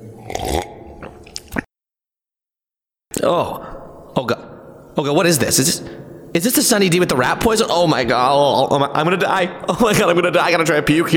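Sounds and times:
person swallowing and gulping a drink quickly: 0:00.0 - 0:01.7
squishy mouth noises: 0:00.0 - 0:01.7
speech: 0:03.2 - 0:11.1.

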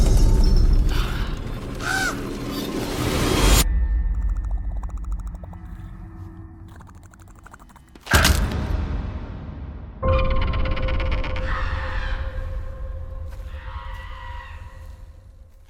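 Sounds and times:
low rumbling film soundtrack: 0:00.2 - 0:15.6
harsh raspy birds cawing in a film clip: 0:00.9 - 0:03.3, 0:11.4 - 0:15.3.

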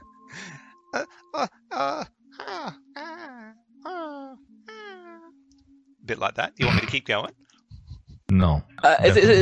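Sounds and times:
speech: 0:01.0 - 0:01.6, 0:06.1 - 0:07.4, 0:08.4 - 0:09.4
person vocally imitating a baby creature calming down: 0:01.0 - 0:05.3.

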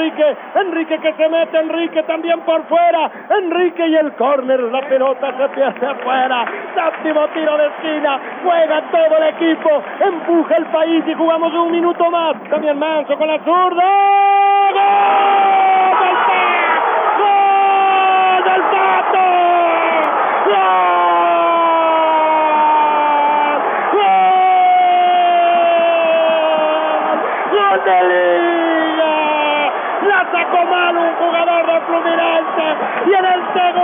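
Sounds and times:
speech: 0:00.0 - 0:15.1
stadium crowd roaring in goal celebration: 0:00.0 - 0:33.8
single person letting out a long sustained yell: 0:13.8 - 0:30.3.

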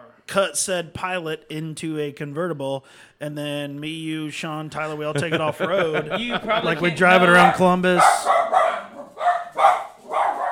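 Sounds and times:
speech: 0:00.3 - 0:08.6
laughter: 0:04.8 - 0:08.2
dog barking: 0:07.3 - 0:10.5.

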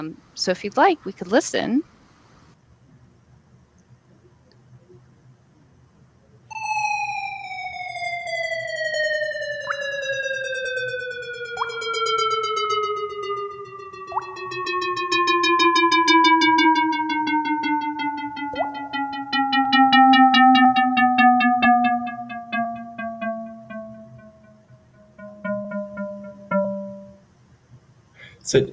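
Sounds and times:
speech: 0:00.0 - 0:01.9
buzzy synthesized data sonification tone sliding downward in pitch: 0:06.6 - 0:27.2
water-droplet plinks: 0:14.1 - 0:14.4.

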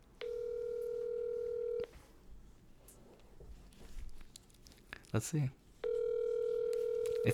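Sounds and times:
faint noise: 0:00.0 - 0:07.3
steady electronic telephone tone while a number is dialed: 0:00.2 - 0:01.9, 0:05.8 - 0:07.3
speech: 0:05.1 - 0:05.6.

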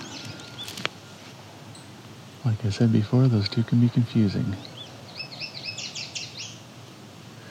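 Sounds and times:
yellow warbler singing: 0:00.0 - 0:00.9, 0:02.6 - 0:06.7
low hiss: 0:00.0 - 0:07.4
speech: 0:02.4 - 0:04.7.

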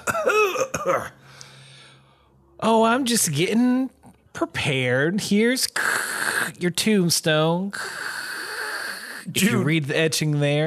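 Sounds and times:
person coughing loud throaty coughs: 0:00.0 - 0:01.2, 0:09.3 - 0:09.8
speech: 0:00.8 - 0:01.4, 0:02.6 - 0:08.1, 0:09.3 - 0:10.6.

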